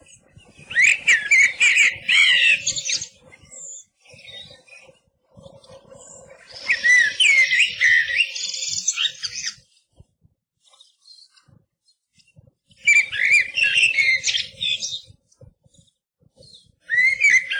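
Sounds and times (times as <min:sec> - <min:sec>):
Eurasian blackbird singing warbled whistled phrases: 0:00.7 - 0:04.6, 0:06.1 - 0:09.6, 0:12.9 - 0:15.0, 0:16.9 - 0:17.5.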